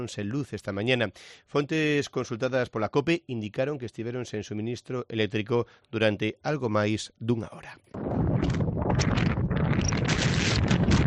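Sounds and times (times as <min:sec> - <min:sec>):
speech: 0:00.0 - 0:10.0
strong coastal wind buffeting the microphone: 0:08.0 - 0:11.0.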